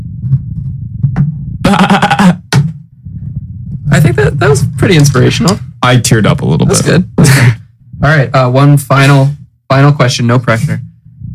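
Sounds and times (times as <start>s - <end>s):
low rumbling hum: 0.0s - 11.3s
person imitating a sheep bleating: 1.6s - 2.4s
speech: 4.4s - 10.9s.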